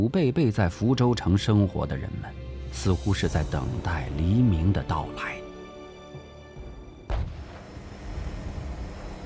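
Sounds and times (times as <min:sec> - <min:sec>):
speech: 0:00.0 - 0:05.4
artillery boom around a city: 0:07.1 - 0:08.8
continuous artillery fire around the city of Fuzhou: 0:07.1 - 0:09.0.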